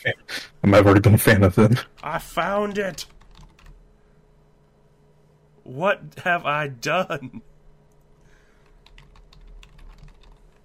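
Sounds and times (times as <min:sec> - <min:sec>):
speech: 0:00.0 - 0:03.2, 0:05.7 - 0:07.5
low constant hum: 0:00.0 - 0:10.6
typing on a computer keyboard: 0:02.7 - 0:03.8, 0:08.8 - 0:10.6.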